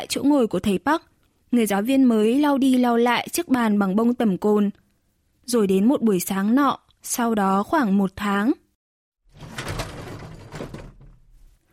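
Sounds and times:
speech: 0.0s - 4.8s, 5.5s - 8.6s
school academic affairs office door creaking open: 9.3s - 11.6s.

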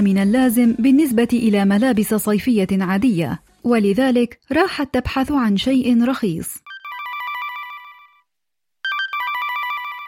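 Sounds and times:
speech: 0.0s - 6.6s
mobile phone ringtone with bright warbling electronic melody: 6.7s - 10.0s.

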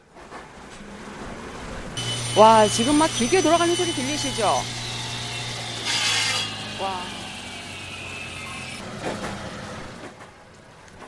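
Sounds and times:
voices talking: 2.0s - 5.4s, 6.5s - 8.8s
loud hissing grinding burst: 2.0s - 10.1s
metalworking machinery humming in a workshop: 2.0s - 10.2s.

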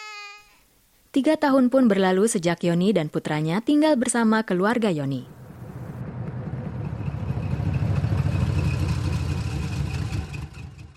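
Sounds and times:
speech: 1.2s - 5.4s
heavy logging truck engine idling: 5.3s - 10.9s.

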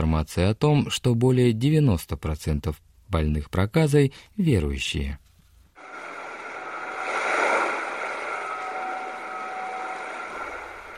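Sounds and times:
speech: 0.1s - 5.2s
faint engine-like hum: 5.8s - 10.9s
sea waves rushing: 5.8s - 10.9s.

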